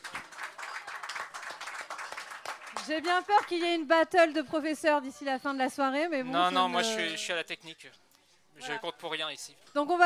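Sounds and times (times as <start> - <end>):
audience applause for a guest introduced on stage at an evening show: 0.0 - 3.6
speech: 2.9 - 8.0, 8.6 - 10.0.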